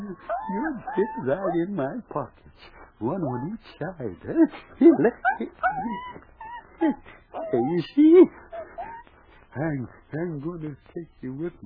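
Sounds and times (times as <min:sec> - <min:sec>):
puppy whimpering: 0:00.0 - 0:02.0, 0:03.0 - 0:03.8, 0:04.8 - 0:10.6
laughter: 0:00.0 - 0:11.6
speech: 0:00.2 - 0:08.4, 0:09.5 - 0:11.6.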